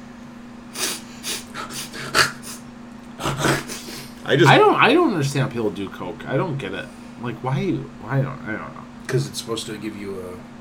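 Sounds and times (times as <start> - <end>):
short breathy sniffles: 0.8 - 2.6, 3.2 - 4.2
speech: 4.3 - 10.6.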